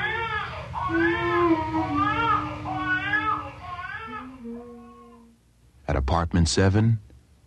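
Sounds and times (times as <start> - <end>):
baby crying: 0.0 - 5.4
mother singing softly: 0.8 - 5.4
speech: 6.1 - 7.1.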